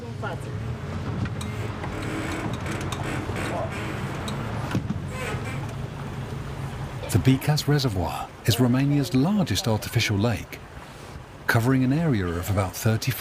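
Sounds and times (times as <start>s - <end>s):
12-person tour motorboat engine droning on the Bicaz Reservoir in Romania: 0.0s - 13.1s
water noise on the Bicaz Reservoir: 0.0s - 13.1s
speech: 0.2s - 1.2s, 7.1s - 10.6s, 11.5s - 13.1s.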